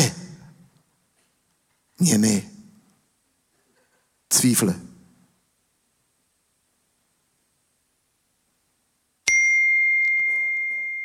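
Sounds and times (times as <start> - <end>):
speech: 2.0 - 2.5, 4.4 - 4.9
phone text message notification ding: 9.3 - 11.0.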